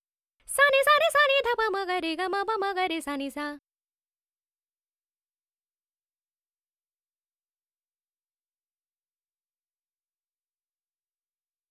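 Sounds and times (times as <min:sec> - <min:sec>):
dry female vocals in 4-4 D at 100: 0:00.5 - 0:03.6.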